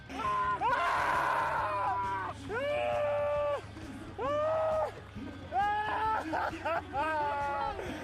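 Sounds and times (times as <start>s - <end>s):
Paris-Roubaix winning cyclist screaming in celebration: 0.2s - 3.6s, 5.5s - 7.6s
laughter: 2.6s - 8.0s.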